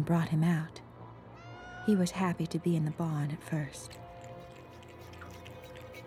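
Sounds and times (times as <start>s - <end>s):
speech: 0.0s - 0.8s, 1.8s - 4.0s
cat slurping milk from a dish in a barn: 3.6s - 6.0s.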